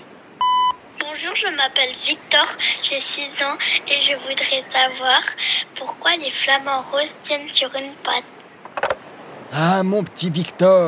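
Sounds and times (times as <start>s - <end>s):
electronic answering machine beep before a recorded message: 0.4s - 0.8s
speech: 1.2s - 8.4s, 9.5s - 10.8s.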